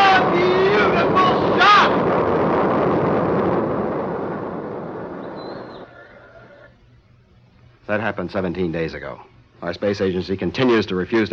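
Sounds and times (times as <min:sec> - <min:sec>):
rocket lifting off at launch: 0:00.0 - 0:06.7
speech: 0:08.0 - 0:11.3.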